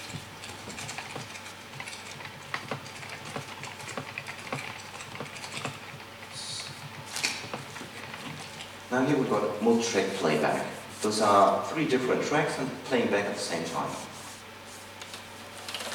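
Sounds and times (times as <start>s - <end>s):
typing on a computer keyboard: 0.4s - 6.0s
speech: 9.0s - 14.1s.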